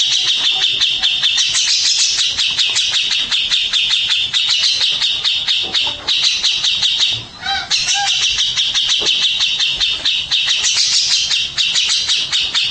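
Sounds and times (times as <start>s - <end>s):
mixed birds chirping in a dense shrill chorus: 0.0s - 12.7s.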